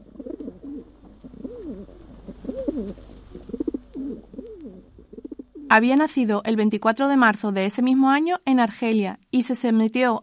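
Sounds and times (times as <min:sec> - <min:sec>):
pigeons cooing: 0:00.0 - 0:05.8
speech: 0:05.7 - 0:10.2.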